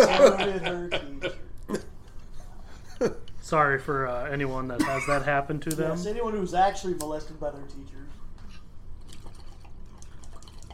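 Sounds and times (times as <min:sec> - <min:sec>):
laughter: 0:00.0 - 0:01.5
speech: 0:03.0 - 0:08.2
hookah water bubbling and gurgling while starting up: 0:08.9 - 0:10.7.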